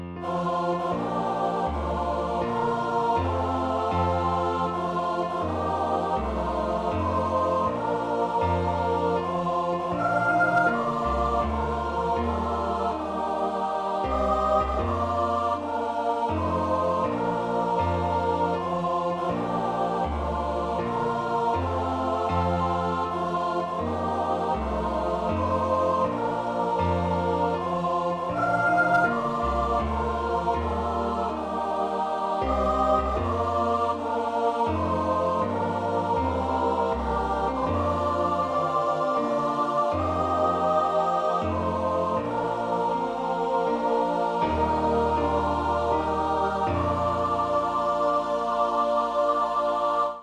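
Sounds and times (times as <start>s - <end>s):
choir singing a birthday song: 0.2s - 50.2s.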